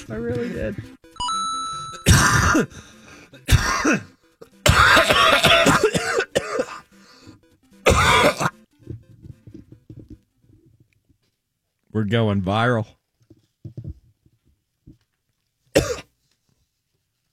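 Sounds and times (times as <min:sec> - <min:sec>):
speech: 0:00.1 - 0:01.0, 0:02.5 - 0:04.1, 0:12.0 - 0:13.0
harsh coughs into the microphone: 0:02.0 - 0:02.7, 0:03.3 - 0:06.9, 0:07.8 - 0:08.6, 0:15.7 - 0:16.2.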